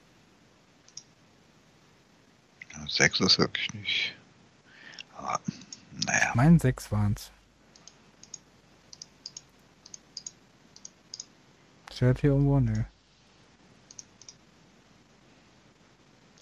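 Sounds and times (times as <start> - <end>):
light crisp computer mouse clicks: 0.8 - 1.1, 7.7 - 11.3, 13.9 - 14.4
speech: 2.9 - 4.2, 5.2 - 7.4, 12.0 - 12.9.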